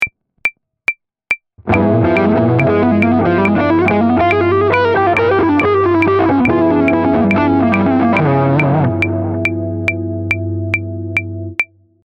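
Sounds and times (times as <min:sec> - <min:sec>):
jazz fusion lick on a half-whole diminished scale: 0:01.7 - 0:11.5.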